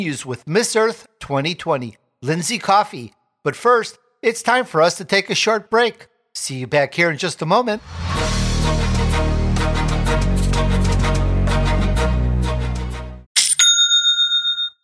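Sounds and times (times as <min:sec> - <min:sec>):
speech: 0:00.0 - 0:08.4
loud music: 0:07.8 - 0:13.3
cash register bell ringing: 0:13.4 - 0:14.8.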